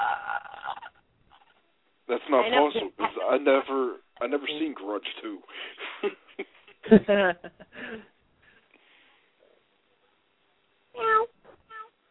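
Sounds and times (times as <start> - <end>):
speech: 2.1 - 8.1
child imitating a cat's meow: 11.0 - 11.9.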